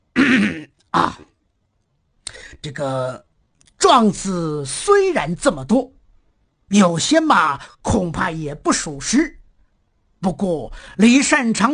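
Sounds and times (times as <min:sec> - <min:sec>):
voice actor clearing his throat as an emperor: 0:00.1 - 0:01.3
speech: 0:02.6 - 0:03.3, 0:03.9 - 0:06.0, 0:06.7 - 0:09.4, 0:10.2 - 0:11.7.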